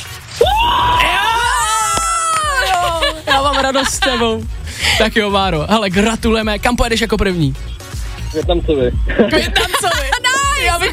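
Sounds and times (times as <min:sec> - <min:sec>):
man screaming with joy to celebrate winning an electric scooter: 0:00.4 - 0:03.4
laughter: 0:02.2 - 0:05.1, 0:09.1 - 0:10.9
speech: 0:03.6 - 0:10.9.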